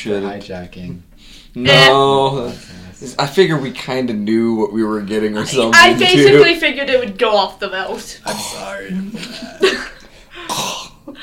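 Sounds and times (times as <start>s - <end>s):
speech: 0.0s - 11.2s
person coughing after inhaling sugar cookie crumbs: 8.3s - 11.0s.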